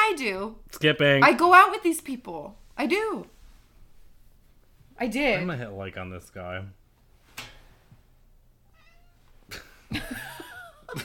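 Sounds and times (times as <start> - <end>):
speech: 0.2 - 3.3, 5.0 - 6.8, 9.5 - 11.0
cat meowing: 8.6 - 9.3
cat yowling: 8.7 - 9.2.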